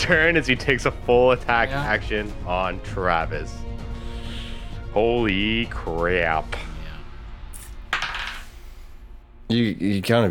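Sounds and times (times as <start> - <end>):
speech: 0.1 - 3.8, 5.0 - 6.7, 9.5 - 10.2
dice rolling on a hard tabletop during a tabletop role-playing game: 7.9 - 8.6.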